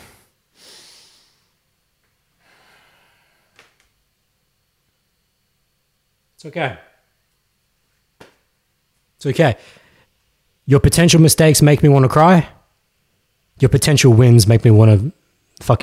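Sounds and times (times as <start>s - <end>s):
person breathing deeply: 0.0s - 1.6s, 2.3s - 3.6s, 9.6s - 10.1s
speech: 6.4s - 6.9s, 9.2s - 9.8s, 10.7s - 12.6s, 13.6s - 15.8s.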